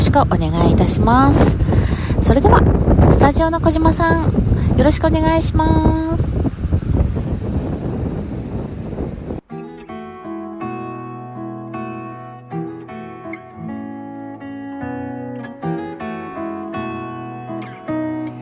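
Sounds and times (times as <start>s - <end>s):
roaring wind at a beach: 0.0s - 9.5s
speech: 0.2s - 6.5s.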